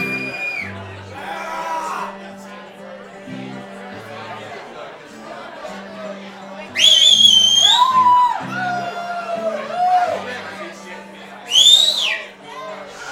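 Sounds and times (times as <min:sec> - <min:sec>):
loud shrill whistle in a crowd: 0:00.0 - 0:00.8, 0:06.7 - 0:08.9, 0:11.5 - 0:12.3
crowd voices chattering: 0:00.0 - 0:13.1.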